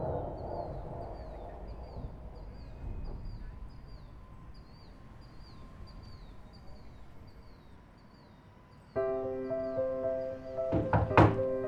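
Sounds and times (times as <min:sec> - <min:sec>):
faint birds chirping: 0:00.0 - 0:11.6
loud thuds knocking at the door: 0:10.7 - 0:11.6.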